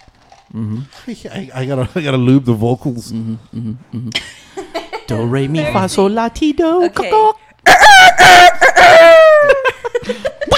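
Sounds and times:
speech: 0.5 - 7.4, 10.0 - 10.3
rooster crowing: 7.6 - 9.7.

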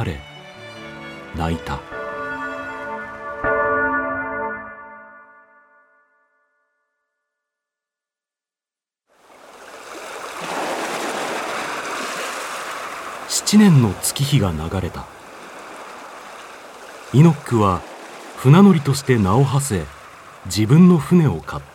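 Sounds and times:
speech: 0.0 - 0.3, 1.3 - 2.0, 13.5 - 15.2, 17.1 - 21.7
church bell ringing for a wedding in a town: 1.6 - 7.2.

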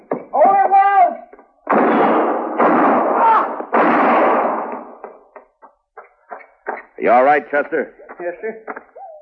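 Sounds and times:
man shouting: 0.4 - 1.3
gunshots in a shootout: 1.6 - 5.3
speech: 7.1 - 8.8.

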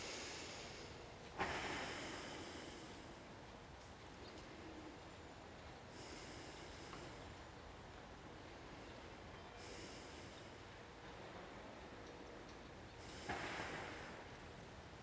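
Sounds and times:
slow deep breathing of a person holding a low hip-opening stretch: 0.0 - 3.4, 5.9 - 7.4, 13.0 - 14.5
faint steady hiss: 0.0 - 15.0.

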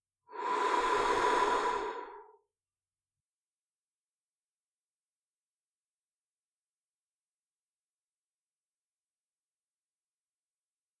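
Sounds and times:
long slow breathy exhale: 0.3 - 2.4.

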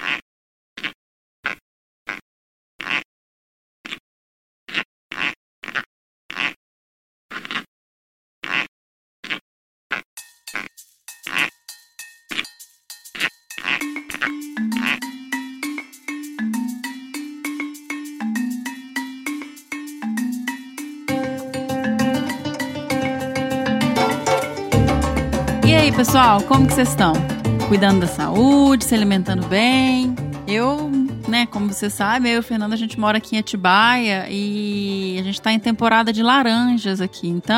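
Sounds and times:
snake cloacal popping: 8.4 - 11.6, 13.1 - 15.0
busy musical jingle with bright tones and a low melody: 13.8 - 32.3
speech: 26.0 - 37.5.

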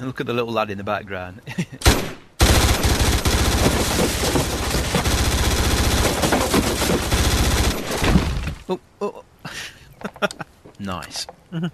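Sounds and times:
speech: 0.0 - 1.8, 8.7 - 9.2, 10.2 - 11.7
rapid automatic gunfire from a weapon being demonstrated: 1.8 - 8.0.

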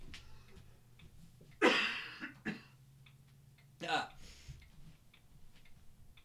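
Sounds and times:
faint steady hum: 0.0 - 6.2
person coughing into a microphone: 1.6 - 2.8.

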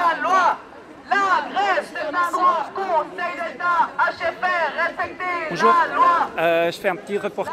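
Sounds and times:
dense crowd chattering at a street demonstration in Fribourg: 0.0 - 7.5
speech: 2.2 - 7.5.

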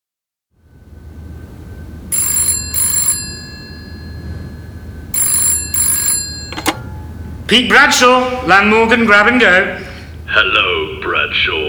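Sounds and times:
low steady room hum: 0.6 - 11.6
old-fashioned telephone bell ringing: 2.1 - 7.4
speech: 7.5 - 11.6.

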